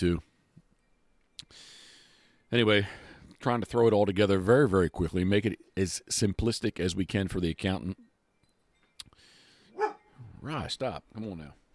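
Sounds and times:
speech: 0.0s - 0.3s, 2.5s - 8.1s, 10.4s - 11.6s
dog barking: 9.8s - 10.0s.

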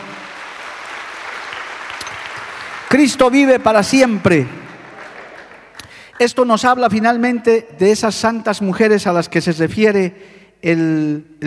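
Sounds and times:
audience applause: 0.0s - 6.0s
speech: 2.9s - 4.6s, 6.2s - 11.4s.

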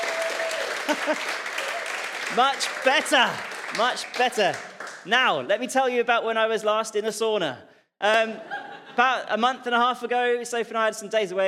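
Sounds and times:
people shouting and cheering: 0.0s - 4.3s
audience applauding: 0.0s - 5.1s
laughter: 0.6s - 1.8s, 8.1s - 9.7s
speech: 0.9s - 1.5s, 2.3s - 11.4s.

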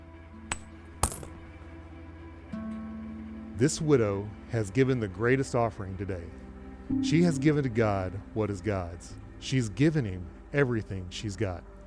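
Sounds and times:
small coins dropping into treasury with metallic clink: 0.5s - 1.4s
speech: 3.6s - 11.7s.

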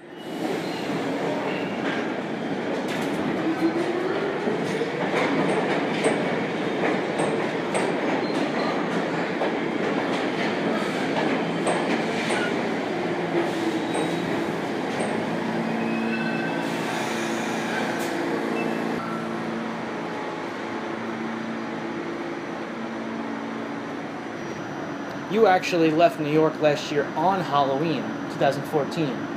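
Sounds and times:
New York City subway train rumbling along the rails heard from inside the car: 0.0s - 29.3s
faint rhythmic clacking of subway train on rails: 0.4s - 19.4s
speech: 25.4s - 29.3s.

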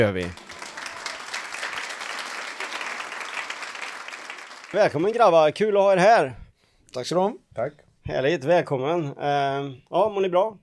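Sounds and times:
speech: 0.0s - 0.4s, 4.7s - 10.6s
small studio audience clapping: 0.0s - 5.3s.

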